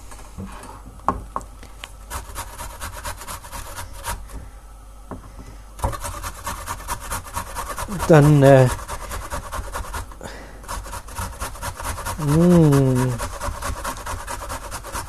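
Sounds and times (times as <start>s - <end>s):
speech: 0.4s - 0.6s, 7.9s - 8.8s, 12.2s - 13.3s
fresh coriander rubbed on a fine kitchen grater: 2.1s - 4.2s, 5.8s - 15.0s.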